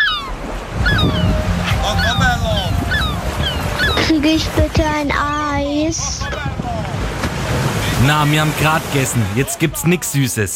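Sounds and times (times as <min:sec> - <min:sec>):
high chirping gull-like calls: 0:00.0 - 0:04.7
ocean surf on a beach: 0:00.0 - 0:10.5
speech: 0:04.1 - 0:06.6, 0:07.5 - 0:10.5.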